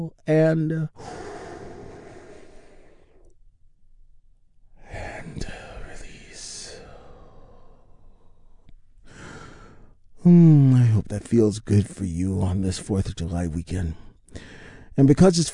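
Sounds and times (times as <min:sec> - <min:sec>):
speech: 0:00.0 - 0:01.3, 0:10.2 - 0:15.5
big deep breath taken together in a guided calming moment: 0:01.0 - 0:03.4, 0:04.8 - 0:10.0, 0:13.9 - 0:15.0.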